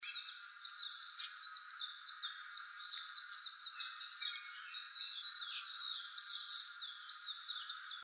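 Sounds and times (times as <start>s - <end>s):
Eastern crowned warbler song: 0.0s - 8.0s.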